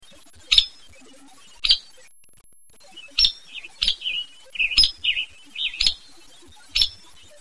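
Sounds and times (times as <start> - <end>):
hairy woodpecker soft low chirping in Northwest California: 0.5 - 0.9, 2.8 - 7.2
hairy woodpecker sharp peek calls in Northwest California: 3.2 - 6.0.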